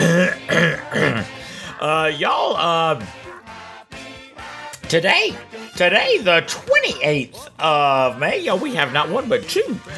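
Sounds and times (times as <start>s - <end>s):
person clearing throat: 0.0s - 1.4s
speech: 2.1s - 3.2s, 4.9s - 9.9s.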